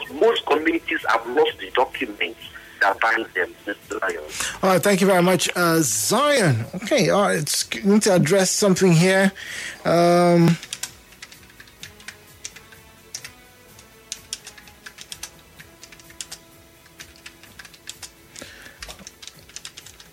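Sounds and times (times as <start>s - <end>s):
speech: 0.1s - 10.7s
person typing on a computer keyboard: 10.5s - 18.2s, 18.8s - 20.1s.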